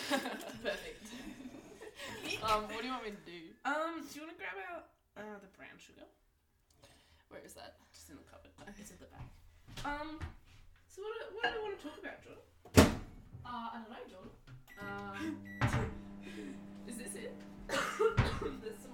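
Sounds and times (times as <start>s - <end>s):
laughter: 0.0s - 2.6s, 16.2s - 16.6s, 17.7s - 18.9s
speech: 0.1s - 1.3s, 2.4s - 6.2s, 7.3s - 10.4s, 11.0s - 18.9s
people chatting in a kitchen: 0.2s - 6.2s, 7.3s - 10.3s, 10.9s - 12.4s, 13.5s - 18.9s
person coughing in a kitchen: 17.7s - 18.6s.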